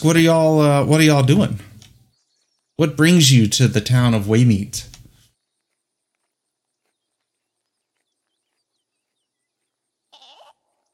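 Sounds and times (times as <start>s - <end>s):
speech: 0.0s - 1.7s, 2.8s - 4.9s
sheep bleating: 10.1s - 10.7s.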